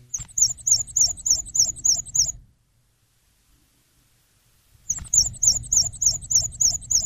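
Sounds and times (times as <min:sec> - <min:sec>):
black-and-white warbler singing: 0:00.0 - 0:02.4, 0:04.9 - 0:07.0
low rushing noise: 0:00.0 - 0:07.0.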